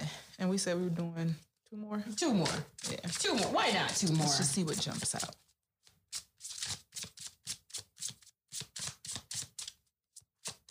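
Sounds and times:
speech: 0:00.4 - 0:05.5
deck of tarot cards being shuffled during a reading: 0:02.4 - 0:10.6.

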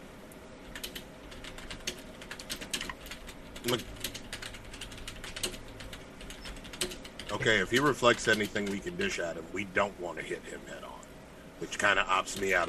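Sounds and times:
person typing on a computer keyboard: 0:00.7 - 0:09.2, 0:12.3 - 0:12.6
speech: 0:03.6 - 0:04.0, 0:07.3 - 0:10.9, 0:11.6 - 0:12.6.

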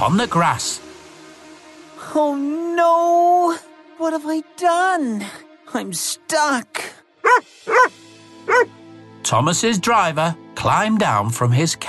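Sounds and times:
speech: 0:00.0 - 0:00.9, 0:02.1 - 0:11.8
dog barking loudly: 0:07.2 - 0:07.9, 0:08.5 - 0:08.7.

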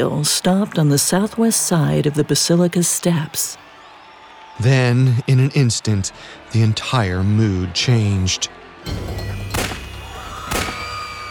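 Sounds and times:
speech: 0:00.0 - 0:03.7, 0:04.6 - 0:09.4
gunshots fired at the Pope in the Pope-mobile on the southwest side of a basilica's steps: 0:08.9 - 0:11.3.

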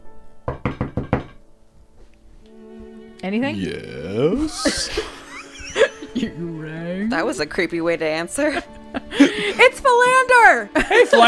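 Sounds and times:
solid knocks on a door: 0:00.4 - 0:01.4
speech: 0:03.2 - 0:05.1, 0:06.2 - 0:11.2
laughter: 0:03.8 - 0:07.2, 0:08.4 - 0:09.9, 0:10.7 - 0:11.2.

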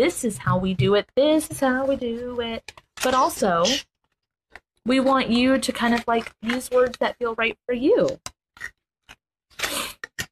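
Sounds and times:
speech: 0:00.0 - 0:03.9, 0:04.8 - 0:08.8
paper cards being shuffled: 0:02.2 - 0:07.4, 0:08.6 - 0:10.2.

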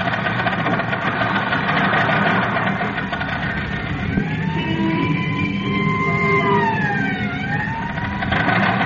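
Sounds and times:
old car engine roaring at speed on a mountain road: 0:00.0 - 0:08.8
wailing siren: 0:03.1 - 0:08.8.

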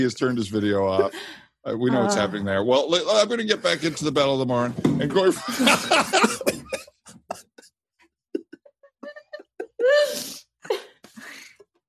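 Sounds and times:
laughter: 0:00.0 - 0:02.6, 0:03.3 - 0:04.5, 0:05.1 - 0:07.7, 0:08.4 - 0:10.1
speech: 0:00.0 - 0:06.6
person on a video call coughing harshly: 0:05.7 - 0:07.7.

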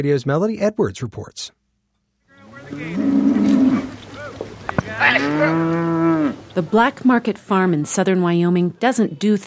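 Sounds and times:
speech: 0:00.0 - 0:01.6, 0:02.7 - 0:03.2, 0:05.0 - 0:09.4
herd of cattle lowing outdoors during a cattle drive: 0:02.5 - 0:06.6.

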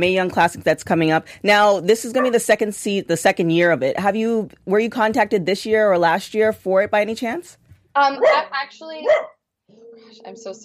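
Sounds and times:
speech: 0:00.0 - 0:10.6
male pet dog barking with a whiny yelping edge: 0:02.2 - 0:02.4, 0:08.2 - 0:09.4.

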